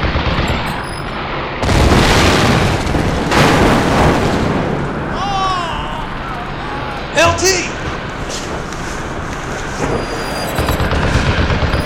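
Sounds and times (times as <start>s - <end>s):
gunfire from several guns in a video game battle: 0.0s - 4.6s, 10.3s - 11.8s
booming blasts in a video game battle: 0.0s - 11.8s.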